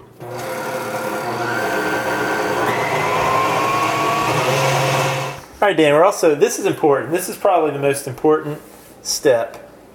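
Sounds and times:
stand mixer beating sugar into a mixture: 0.1s - 5.4s
speech: 5.6s - 9.9s.

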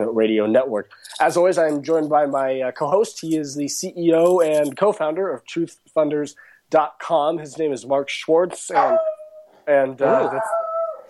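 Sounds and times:
speech: 0.0s - 9.1s, 9.7s - 10.6s
dog howling: 8.8s - 11.0s.

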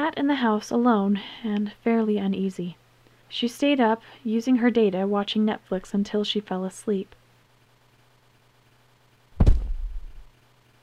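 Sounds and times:
speech: 0.1s - 7.2s
heavy thump on a front door: 9.4s - 10.3s.

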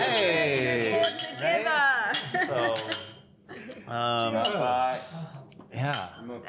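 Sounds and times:
several voices chattering and laughing: 0.0s - 5.5s
glasses clinking in a toast: 1.0s - 3.3s, 5.9s - 6.3s.

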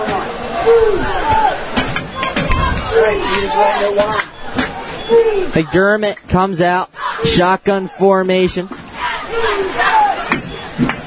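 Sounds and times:
individual shouts from the football crowd: 0.0s - 4.2s, 6.8s - 7.4s, 9.0s - 10.3s
football stadium crowd cheering and yelling at a game: 0.0s - 11.0s
speech: 0.6s - 1.4s, 3.0s - 4.3s, 5.1s - 9.7s.

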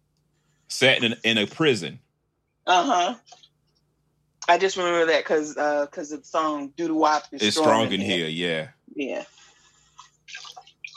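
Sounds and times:
speech: 0.7s - 2.0s, 2.6s - 3.4s, 4.5s - 9.4s
liquid pouring into a glass: 10.0s - 10.9s.

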